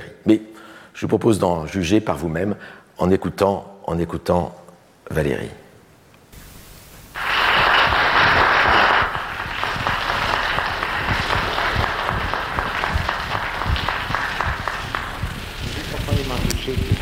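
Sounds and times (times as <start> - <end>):
speech: 0.2 - 5.6
crowd applauding: 7.2 - 16.6.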